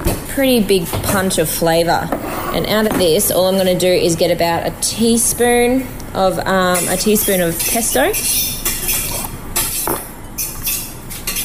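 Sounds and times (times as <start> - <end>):
speech: 0.4 - 9.0
metal fork clinking and scraping while mixing oil into pesto: 6.7 - 11.4.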